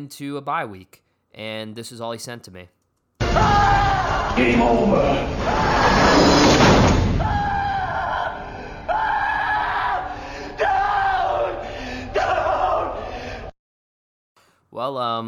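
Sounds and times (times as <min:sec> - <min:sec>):
speech: 0:00.0 - 0:03.8, 0:04.4 - 0:06.6, 0:14.7 - 0:15.2
man screaming and yelling excitedly: 0:03.2 - 0:06.2, 0:07.2 - 0:13.5.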